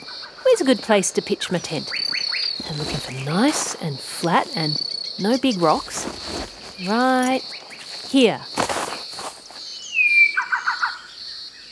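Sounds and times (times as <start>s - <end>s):
Bower's shrike-thrush singing from the ground: 0.0s - 11.6s
faint steady high-pitched insect hum: 0.0s - 11.6s
speech: 0.5s - 8.6s
Bower's shrike-thrush poking through leaves: 1.9s - 9.7s.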